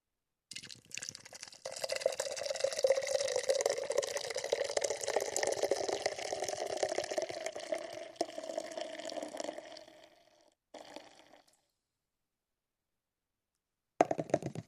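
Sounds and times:
Guinness beer pouring into a glass: 0:00.5 - 0:11.6.

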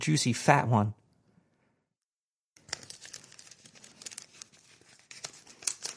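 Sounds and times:
speech: 0:00.0 - 0:01.0
paper envelope holding a check torn open: 0:02.6 - 0:05.9.

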